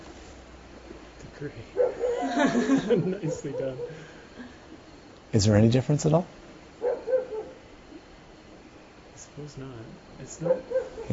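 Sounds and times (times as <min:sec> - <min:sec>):
speech: 0:01.4 - 0:04.1, 0:05.3 - 0:06.4, 0:09.4 - 0:11.1
dog barking: 0:01.8 - 0:02.3, 0:03.2 - 0:04.0, 0:06.8 - 0:07.6, 0:10.4 - 0:11.1
laughter: 0:02.0 - 0:04.5.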